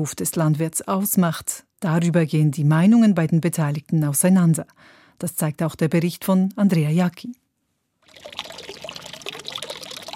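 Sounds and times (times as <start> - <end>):
speech: 0.0 - 7.4
water splashing into concrete fountain basin at a farmhouse in Gommiswald: 8.1 - 10.1.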